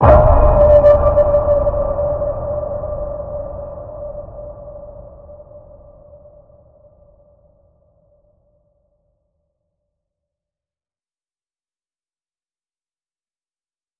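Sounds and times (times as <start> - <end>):
deep water ping tone in D: 0.0 - 5.6.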